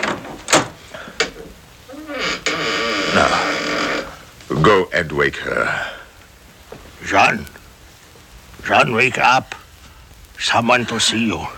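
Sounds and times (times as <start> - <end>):
door hinge creaking: 0.0 - 4.2
speech: 3.2 - 3.5, 4.6 - 5.9, 7.1 - 7.5, 8.6 - 9.6, 10.4 - 11.5.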